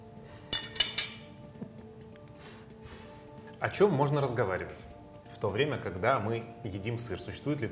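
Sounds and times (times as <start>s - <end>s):
cutlery being laid in a plate: 0.5s - 1.4s
speech: 3.6s - 7.6s.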